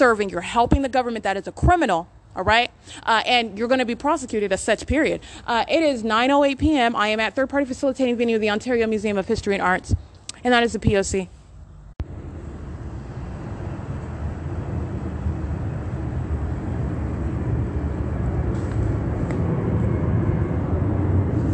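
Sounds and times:
speech: 0:00.0 - 0:11.4
airplane engine roar passing over a museum in Ontario: 0:12.0 - 0:21.5.

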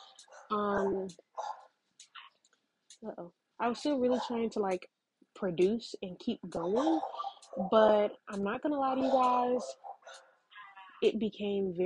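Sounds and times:
dog barking: 0:00.3 - 0:01.7, 0:06.8 - 0:07.8, 0:08.9 - 0:10.2
dog yipping: 0:00.3 - 0:01.7, 0:06.7 - 0:07.9, 0:09.0 - 0:11.0
speech: 0:00.5 - 0:01.5, 0:03.0 - 0:10.2, 0:11.0 - 0:11.8.

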